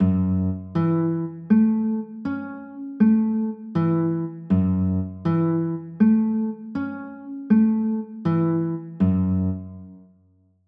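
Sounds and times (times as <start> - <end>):
F sharp m7 chords: 0.0 - 10.1.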